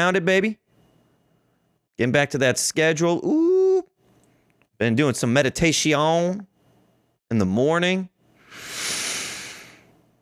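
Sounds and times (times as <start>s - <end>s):
speech: 0.0s - 0.6s, 2.0s - 3.4s, 4.8s - 6.5s, 7.3s - 8.7s
deep breath in through the nose during morning meditation: 8.4s - 10.0s.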